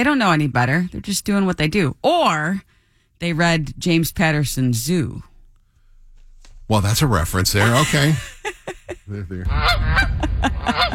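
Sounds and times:
speech: 0.0 - 5.3, 6.7 - 10.9
laughter: 7.5 - 10.9
Canada geese honking: 9.5 - 10.9.

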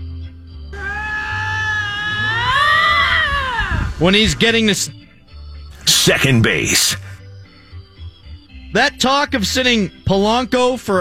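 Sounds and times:
cat yowling: 0.8 - 4.1
speech: 4.0 - 5.0, 6.0 - 7.2, 8.7 - 10.9.

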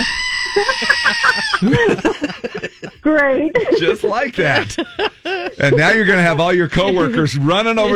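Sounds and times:
person screaming with a bleating goat-like quality: 0.0 - 1.8
laughter: 0.0 - 7.9
speech: 0.6 - 7.9.

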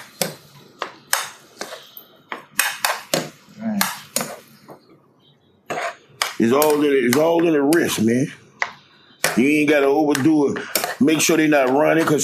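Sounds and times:
metal utensil scraping and clinking in a pan while scrambling eggs with Gouda cheese: 1.2 - 3.0, 5.7 - 6.8, 9.2 - 12.2
speech: 6.4 - 8.4, 9.4 - 12.2.

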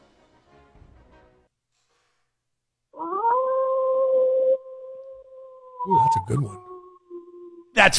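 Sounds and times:
wolf howl played as sound effect: 3.0 - 7.6
speech: 5.8 - 6.7, 7.8 - 7.9.

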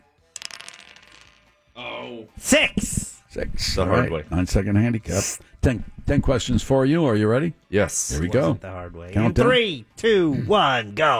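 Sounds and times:
dice clattering across a hard surface: 0.2 - 1.6
speech: 1.8 - 11.1.

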